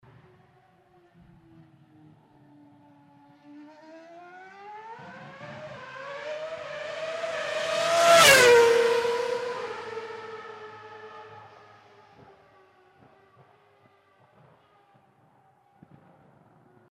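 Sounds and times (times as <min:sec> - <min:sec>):
car passing very fast: 0:03.4 - 0:13.0.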